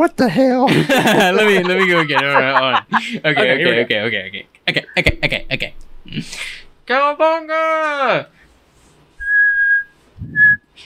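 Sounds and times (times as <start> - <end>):
speech: 0.0 - 8.4
laughter: 0.7 - 5.7
person whistling two clear steady tones: 9.2 - 10.7.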